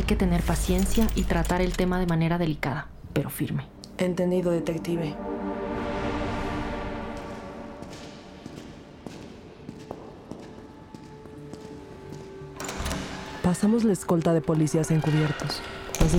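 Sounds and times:
speech: 0.1s - 5.9s, 13.5s - 16.1s
door opening: 0.6s - 2.2s, 12.6s - 13.5s.

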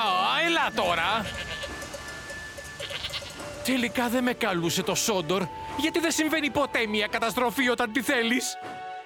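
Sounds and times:
speech: 0.6s - 1.5s, 3.7s - 8.8s
goats bleating on railway tracks: 0.9s - 1.8s, 2.8s - 3.4s.

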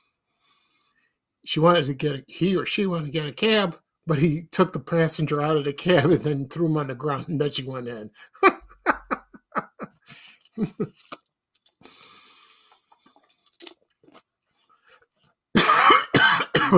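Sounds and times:
speech: 1.4s - 8.6s, 10.6s - 11.2s
laughter: 8.4s - 10.0s, 10.6s - 10.9s
man clearing his throat: 15.6s - 16.7s
man coughing: 15.6s - 16.7s.

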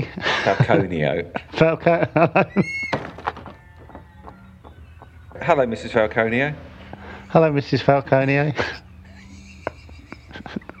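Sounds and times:
laughter: 0.0s - 2.9s, 4.8s - 10.7s
speech: 0.1s - 2.8s, 5.4s - 6.7s, 7.3s - 8.8s
knocking on a boat door: 2.9s - 5.4s
dull thump: 2.9s - 5.5s.

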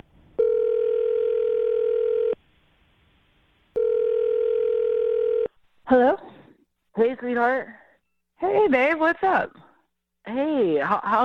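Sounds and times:
phone ringing tones: 0.4s - 2.4s, 3.8s - 5.5s
speech: 5.9s - 6.3s, 7.0s - 7.8s, 8.4s - 9.6s, 10.3s - 11.2s.

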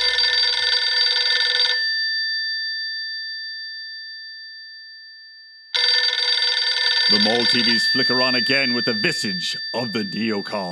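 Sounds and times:
payphone bell ringing: 0.0s - 2.8s, 5.7s - 10.6s
speech: 7.1s - 10.6s.

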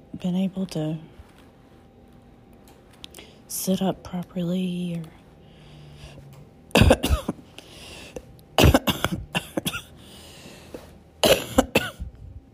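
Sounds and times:
speech: 0.2s - 1.1s, 3.5s - 5.2s
person painfully wet coughing to clear phlegm while recovering from surgery: 6.7s - 7.4s, 8.6s - 10.0s, 11.2s - 12.1s.

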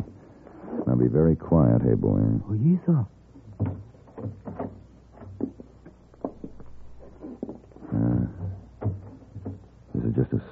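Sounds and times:
speech: 1.0s - 3.2s
soft clicks and shuffling thumps: 3.3s - 10.2s
door hinges creaking: 3.4s - 9.8s.

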